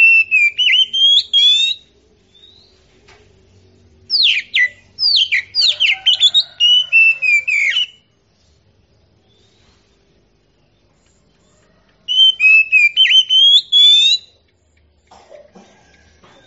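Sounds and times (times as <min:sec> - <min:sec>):
Oriental magpie-robin singing whistled notes and fluty phrases: 0:00.0 - 0:02.8, 0:04.1 - 0:08.1, 0:12.0 - 0:14.4.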